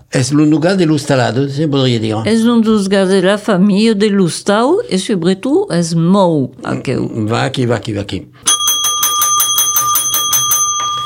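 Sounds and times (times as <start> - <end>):
speech: 0.2 - 8.5
bell ringing: 8.5 - 11.0.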